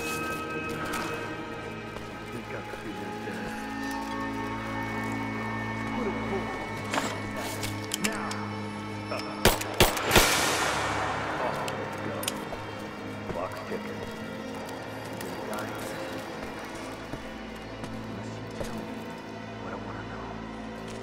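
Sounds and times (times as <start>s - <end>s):
voices talking: 0.1s - 9.8s, 10.7s - 21.0s
gunshots in a video game cutscene: 9.4s - 11.7s.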